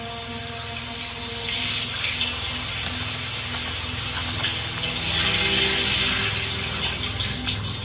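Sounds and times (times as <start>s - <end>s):
water running from a tap into a sink: 0.0s - 7.8s.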